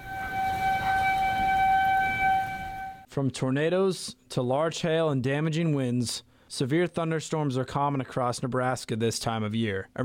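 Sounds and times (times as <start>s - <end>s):
outdoor severe-weather warning siren in Nebraska wailing: 0.0s - 3.1s
speech: 3.2s - 10.0s.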